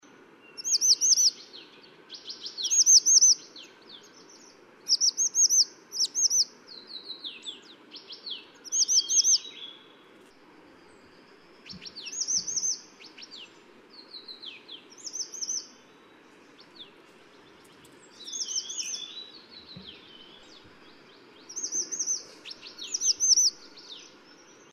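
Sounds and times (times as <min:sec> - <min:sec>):
grey-chinned minivet: 0:00.5 - 0:09.9, 0:11.0 - 0:24.2.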